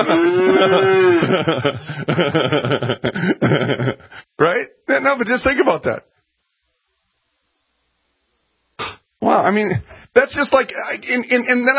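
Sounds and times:
person imitating a cow moo: 0:00.0 - 0:01.3
chuckling laughter and snickering: 0:00.0 - 0:04.2
speech: 0:00.0 - 0:06.2, 0:09.2 - 0:11.7.

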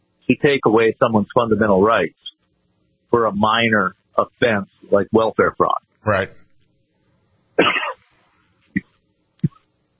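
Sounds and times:
speech: 0:00.3 - 0:02.2, 0:03.1 - 0:06.4
person with a sore throat coughing: 0:07.6 - 0:08.0
throat clearing from someone with a sore throat: 0:07.6 - 0:08.0.

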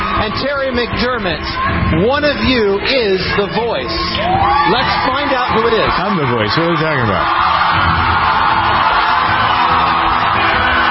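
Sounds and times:
large audience of teenagers screaming at a televised singing competition: 0:00.0 - 0:00.7, 0:03.4 - 0:10.8
speech: 0:00.2 - 0:08.1.

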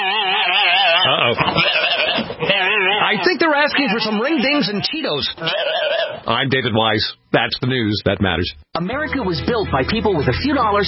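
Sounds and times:
flock of sheep bleating: 0:00.0 - 0:06.3
speech: 0:01.0 - 0:01.9, 0:03.1 - 0:10.8.

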